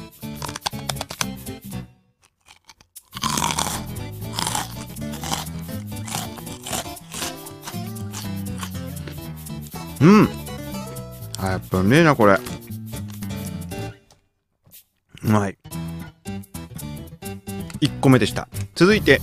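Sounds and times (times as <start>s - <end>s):
thick hard rice cracker being bitten and crunched: 0.4s - 1.4s, 2.2s - 8.8s
speech: 10.0s - 10.4s, 11.4s - 12.7s, 15.3s - 15.6s, 17.8s - 19.2s.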